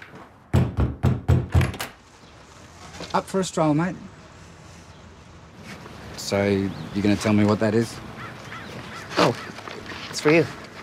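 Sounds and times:
heavy thuds banging on a door: 0.5s - 1.9s
speech: 3.1s - 4.1s, 6.3s - 8.1s, 10.2s - 10.6s.

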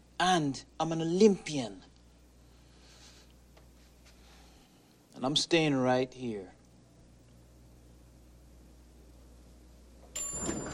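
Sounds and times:
speech: 0.2s - 1.9s, 5.2s - 6.6s
elevator door sliding shut: 10.2s - 10.7s.

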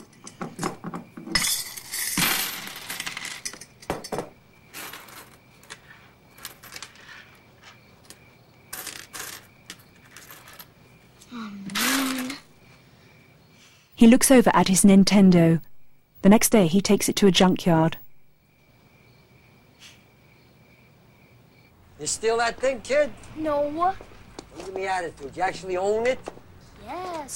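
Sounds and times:
coins spilling out of a jar onto a surface: 1.4s - 3.7s, 8.7s - 10.7s, 11.8s - 12.4s
coins clinking as they are slid and stacked: 1.4s - 5.8s, 6.4s - 7.4s, 8.1s - 10.8s, 11.7s - 12.4s
speech: 14.0s - 18.0s, 22.1s - 27.3s.

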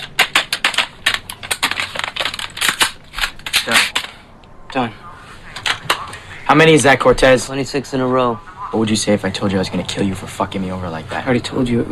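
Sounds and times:
sharp metallic clicks, snaps and rattles of rifles being reassembled: 0.0s - 4.2s
rifles being reassembled: 0.0s - 4.3s
speech: 4.7s - 5.0s, 6.5s - 11.9s.

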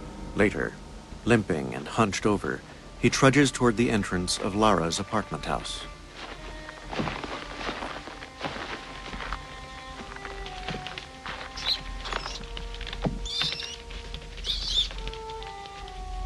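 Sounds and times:
speech: 0.4s - 5.9s
several rats scurrying down stairs: 8.3s - 16.2s
rats' sharp high squeaks: 8.8s - 15.3s.

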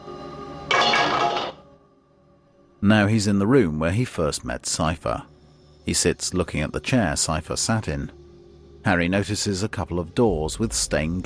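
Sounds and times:
scrubbing brush tossed into a bowl: 0.7s - 1.6s
speech: 2.8s - 8.2s, 8.8s - 11.2s.

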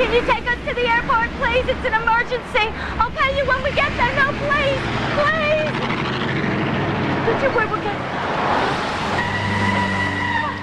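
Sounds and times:
pickup truck pulling up with engine rumbling: 0.0s - 10.6s
speech: 0.1s - 5.8s, 7.3s - 8.8s.

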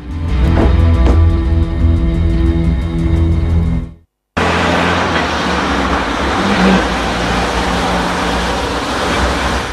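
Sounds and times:
road noise of a vehicle moving along the street: 0.0s - 9.7s
car engine rumbling and revving: 4.4s - 9.7s.

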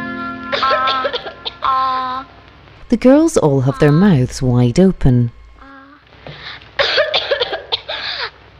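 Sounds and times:
schoolgirl with a lingering cough coughing harshly: 0.5s - 1.7s, 6.5s - 8.4s
speech: 2.9s - 5.4s.

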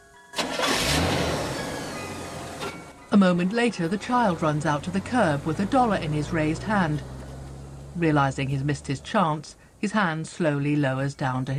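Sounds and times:
car engine starting and driving off: 0.4s - 9.9s
speech: 3.1s - 7.1s, 8.0s - 11.5s.

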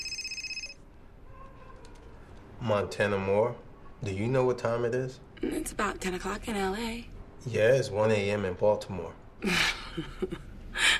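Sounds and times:
telephone ringing at home with an electronic trill: 0.0s - 0.8s
faint noise: 0.0s - 10.9s
speech: 2.6s - 10.5s.

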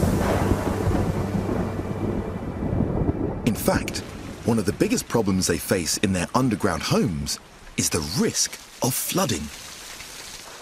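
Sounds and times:
deep low rumble of thunder: 0.0s - 5.2s
heavy rainstorm in a rainforest: 0.0s - 10.6s
speech: 3.7s - 9.6s.

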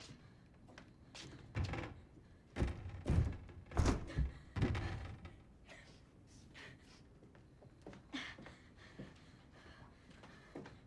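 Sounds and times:
thuds and knocks from forcing open stuck boarded-up windows: 2.6s - 5.2s.

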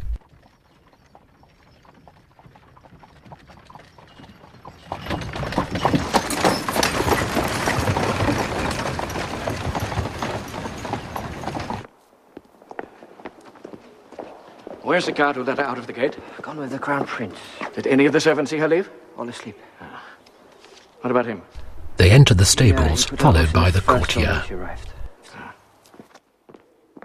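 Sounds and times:
horses' hooves clopping pulling a carriage: 0.0s - 17.2s
carriage wheels rumbling: 0.1s - 11.9s
speech: 14.9s - 19.8s, 21.0s - 25.0s.

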